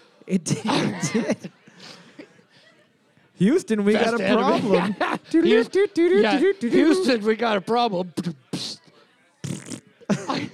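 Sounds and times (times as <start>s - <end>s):
speech: 0.3s - 2.0s, 3.4s - 8.4s
laughter: 0.5s - 3.1s, 4.0s - 7.3s, 9.9s - 10.5s
fart noises: 9.4s - 10.2s.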